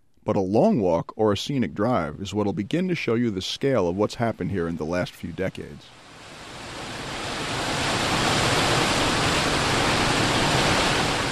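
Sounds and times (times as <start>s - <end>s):
speech: 0.2s - 6.0s
river roaring down a 50-foot waterfall in a national preserve: 5.9s - 11.2s.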